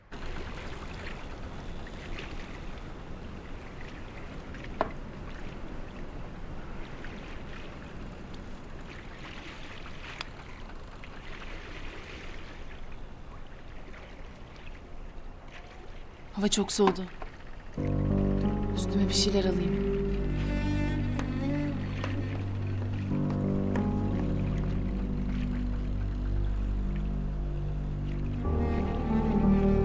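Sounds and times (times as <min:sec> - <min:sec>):
water lapping and sloshing against a boat hull: 0:00.0 - 0:29.8
speech: 0:16.4 - 0:17.2, 0:18.9 - 0:19.9
constant low rumble aboard a boat: 0:17.8 - 0:29.8.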